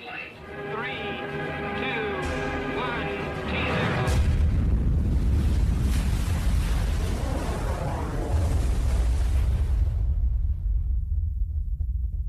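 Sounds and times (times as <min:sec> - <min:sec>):
steady tonal sound: 0:00.0 - 0:05.4
thermonuclear hydrogen bomb test explosion roar: 0:00.4 - 0:12.1.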